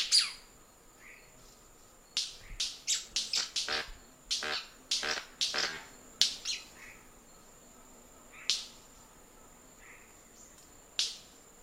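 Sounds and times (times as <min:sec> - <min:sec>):
white-bearded manakin wing snaps: 0:02.2 - 0:06.6, 0:08.4 - 0:08.9, 0:10.5 - 0:11.3.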